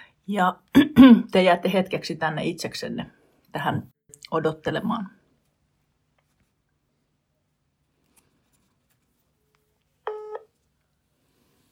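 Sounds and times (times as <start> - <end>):
speech: 0.3 - 5.2
electronic telephone keypad dialing beep: 10.1 - 10.5.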